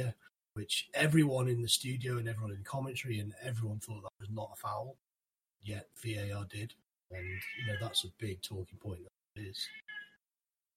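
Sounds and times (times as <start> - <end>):
speech: 0.0 - 5.0, 5.6 - 10.0
cat meowing: 7.2 - 8.0, 9.6 - 10.2.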